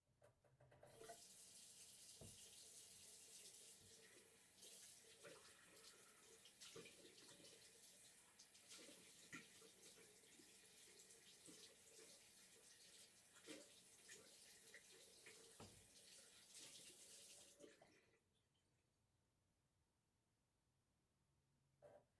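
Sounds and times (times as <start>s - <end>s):
washing hands in bathroom: 0.9s - 17.8s.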